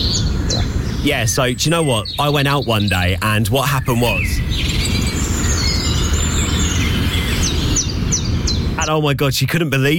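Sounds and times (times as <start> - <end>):
birds chirping and tweeting: 0.0 - 9.9
steady heavy low rumble: 0.0 - 9.9
speech: 1.0 - 4.8, 8.9 - 9.9.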